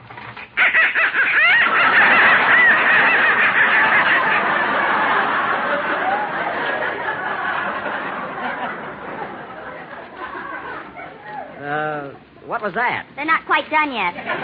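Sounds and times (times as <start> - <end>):
live ducks quacking in a basement: 0.6 - 6.2
laughter: 0.6 - 11.6, 14.1 - 14.4
speech: 12.6 - 14.4.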